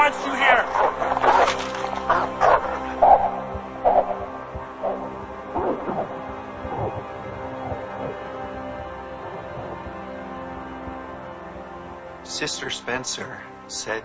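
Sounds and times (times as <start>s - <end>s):
speech: 0.0s - 0.4s, 12.6s - 14.0s
steady low hum: 0.0s - 12.2s
dog barking: 0.8s - 5.2s.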